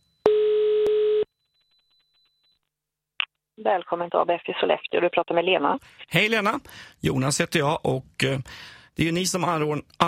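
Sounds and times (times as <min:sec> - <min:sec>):
telephone ringing tone while placing call: 0:00.2 - 0:02.5
speech: 0:03.6 - 0:10.0.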